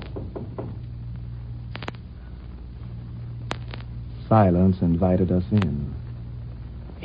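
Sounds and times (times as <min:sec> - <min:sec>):
knocking on a garage door in a town: 0:00.0 - 0:00.8
low rumbling hum: 0:00.0 - 0:07.0
speech: 0:04.3 - 0:06.0.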